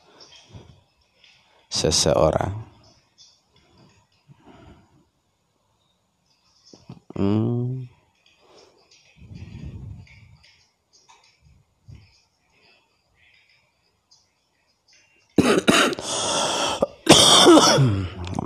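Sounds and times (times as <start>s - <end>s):
faint high insect chirping: 0.0s - 18.1s
speech: 1.8s - 2.7s
person coughing at home: 15.4s - 18.2s.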